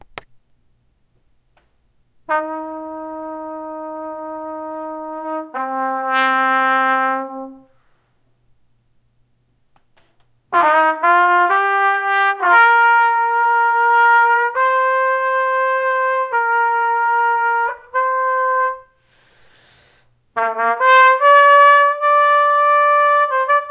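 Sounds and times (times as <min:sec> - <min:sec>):
trumpet playing a single note: 0:02.3 - 0:07.7, 0:10.5 - 0:19.0, 0:20.4 - 0:23.6.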